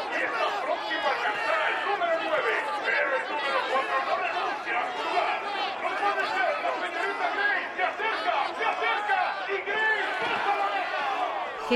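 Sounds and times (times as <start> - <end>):
dense crowd in a betting center shouting and cheering on a horse race: 0.0 - 11.7.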